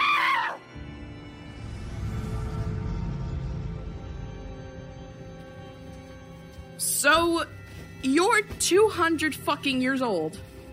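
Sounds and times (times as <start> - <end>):
woman's loud high-pitched scream: 0.0 - 0.6
steady low rumbling noise: 1.3 - 6.4
speech: 6.8 - 10.5.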